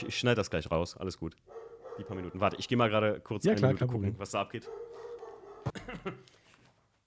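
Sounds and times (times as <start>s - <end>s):
speech: 0.0s - 5.1s, 5.8s - 6.4s
dog barking: 1.5s - 2.7s, 4.6s - 5.8s.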